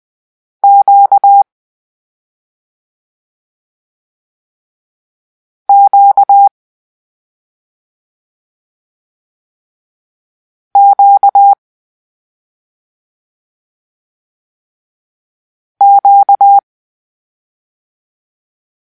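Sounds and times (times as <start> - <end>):
morse code for the letter Q: 0.6 - 1.4, 5.7 - 6.5, 10.8 - 11.6, 15.8 - 16.6.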